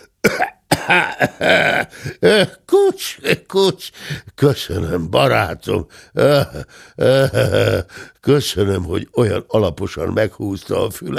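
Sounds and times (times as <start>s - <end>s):
traveller in a boat coughing and sneezing: 0.0s - 3.4s
speech: 0.9s - 11.1s.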